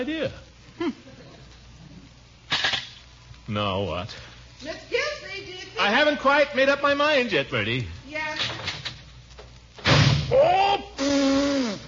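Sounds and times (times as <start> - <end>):
speech: 0.0 - 1.2, 3.5 - 8.6, 10.3 - 11.4
door slamming shut: 9.8 - 10.3.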